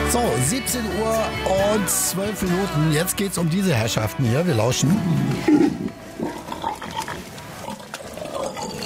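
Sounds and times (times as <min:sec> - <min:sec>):
speech: 0:00.1 - 0:06.3
wild boars grunting in low rough snorts: 0:04.8 - 0:08.7.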